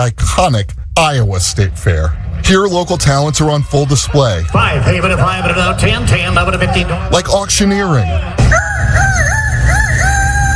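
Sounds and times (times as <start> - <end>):
speech: 0.0 - 9.1
steady low rumble: 0.0 - 10.5
young person imitating a rooster crow in a youth rooster-calling contest at a state fair: 8.5 - 10.5.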